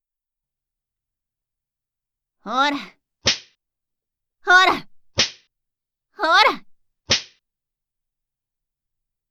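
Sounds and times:
speech: 0:02.4 - 0:03.0, 0:04.5 - 0:04.8
whip lash swishing through air and striking flesh: 0:03.2 - 0:03.5, 0:05.2 - 0:05.4, 0:07.1 - 0:07.4.

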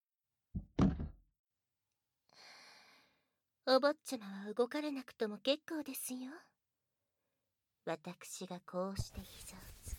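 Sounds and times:
chair lifted and set down: 0:00.6 - 0:01.2
speech: 0:03.7 - 0:06.5, 0:07.9 - 0:09.7.

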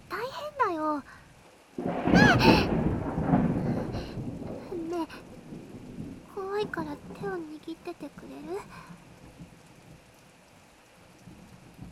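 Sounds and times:
steady rain hissing: 0:00.0 - 0:11.8
speech: 0:01.0 - 0:01.2, 0:06.6 - 0:09.0
thunder rumbling during a rainstorm: 0:01.8 - 0:10.1, 0:11.2 - 0:11.8.

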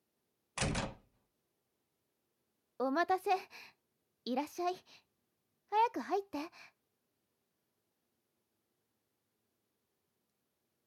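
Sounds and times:
door opening: 0:00.6 - 0:01.1
speech: 0:02.8 - 0:05.1, 0:05.7 - 0:06.8.

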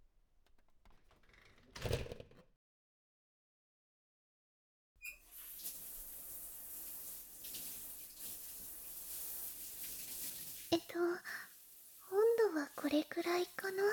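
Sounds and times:
bath water running from a tap: 0:05.1 - 0:13.9
speech: 0:12.9 - 0:13.9.

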